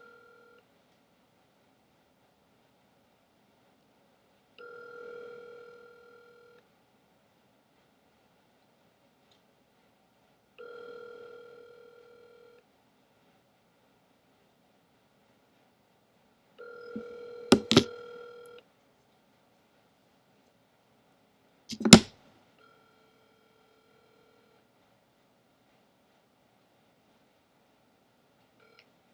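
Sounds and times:
buzzy electronic telephone line tone after a call hangs up: 0:00.0 - 0:00.6, 0:04.6 - 0:06.6, 0:10.6 - 0:12.6, 0:16.6 - 0:18.6, 0:22.6 - 0:24.6, 0:28.6 - 0:28.9
sharp clicks: 0:21.7 - 0:22.1.

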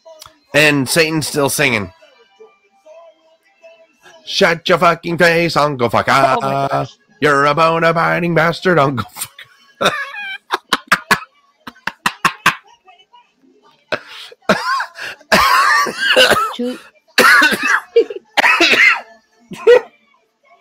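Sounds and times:
speech: 0:00.5 - 0:02.0, 0:04.3 - 0:10.1
person coughing from laughing hard: 0:09.2 - 0:12.6, 0:14.5 - 0:19.9
wheezy breaths: 0:13.9 - 0:15.3.

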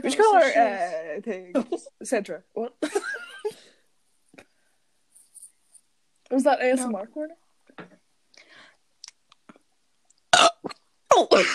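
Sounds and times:
speech: 0:00.0 - 0:03.2, 0:06.3 - 0:08.0, 0:10.4 - 0:11.5
mouth clicks and smacks: 0:09.0 - 0:11.0
loud burp: 0:10.3 - 0:11.5.

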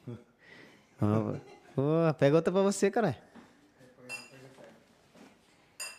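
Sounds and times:
speech: 0:01.0 - 0:03.3
glasses clinking in a toast: 0:04.1 - 0:04.4, 0:05.8 - 0:05.9.

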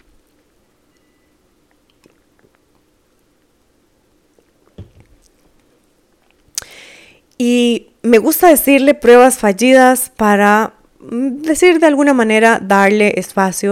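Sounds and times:
someone sipping and swallowing water: 0:01.7 - 0:02.9, 0:04.3 - 0:06.8
speech: 0:07.4 - 0:13.7.

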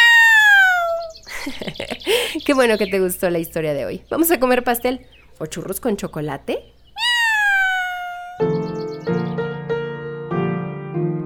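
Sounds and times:
cat meowing: 0:00.0 - 0:01.1, 0:07.0 - 0:08.5
laughter: 0:01.3 - 0:02.4
speech: 0:01.4 - 0:06.8.

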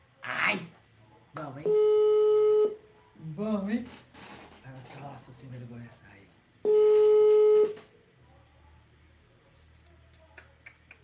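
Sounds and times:
speech: 0:00.5 - 0:00.8, 0:01.4 - 0:02.1, 0:03.2 - 0:06.9
telephone line tone while placing a call: 0:01.6 - 0:02.8, 0:06.6 - 0:07.9.

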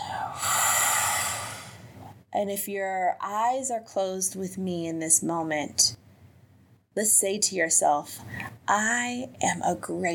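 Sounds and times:
slow deep breath in and out during a guided meditation: 0:00.0 - 0:02.0
speech: 0:02.4 - 0:06.0, 0:07.0 - 0:10.1.

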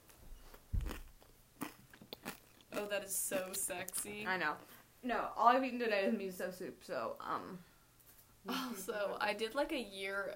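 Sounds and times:
chewing cheese and mouth sounds: 0:00.5 - 0:04.7
crunchy bites of cheese: 0:00.8 - 0:02.9
speech: 0:02.8 - 0:07.7, 0:08.4 - 0:10.3.

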